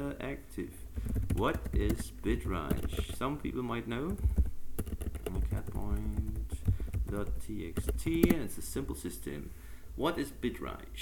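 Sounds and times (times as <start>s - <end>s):
speech: 0.2s - 4.4s, 5.4s - 6.4s, 7.1s - 11.0s
typing on a computer keyboard: 1.0s - 3.4s, 4.1s - 8.5s.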